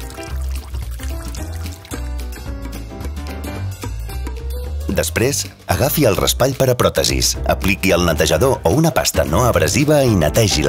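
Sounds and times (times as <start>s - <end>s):
water pouring into a sink basin: 0.0s - 2.2s
speech: 5.0s - 10.6s.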